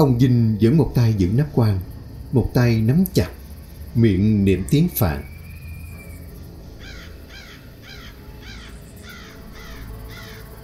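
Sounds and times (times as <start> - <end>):
speech: 0.0 - 3.4, 4.0 - 5.3
hiss: 0.0 - 10.6
crow cawing perched on a house roof: 5.6 - 10.6.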